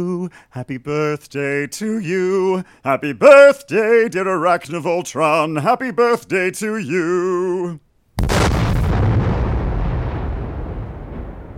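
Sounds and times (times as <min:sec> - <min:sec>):
speech: 0:00.0 - 0:08.5
monster's head exploding in a booming blast: 0:08.2 - 0:11.5.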